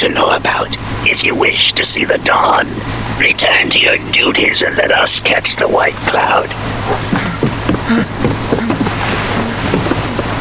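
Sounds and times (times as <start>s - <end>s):
speech: 0.0s - 7.2s, 7.9s - 8.2s
boat motor rumble: 0.0s - 10.3s
water sloshing: 0.4s - 10.3s
knocks of a boat at a pier: 7.1s - 10.3s.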